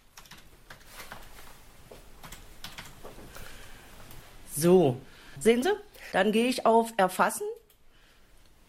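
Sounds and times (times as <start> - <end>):
typing a password on a computer keyboard: 0.1 - 1.3, 2.2 - 3.1
speech: 4.6 - 7.5.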